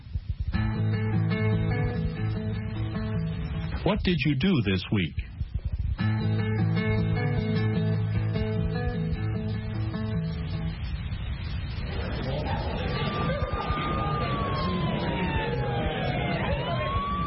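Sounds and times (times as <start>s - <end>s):
noise: 0.0s - 17.2s
speech: 3.8s - 5.3s
emergency vehicle siren: 11.6s - 17.2s.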